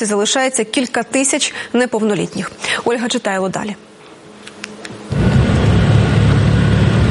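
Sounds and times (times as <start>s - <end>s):
speech: 0.0s - 3.9s
evacuation car engine roaring as it pulls up to a house in Kherson region: 5.1s - 7.0s.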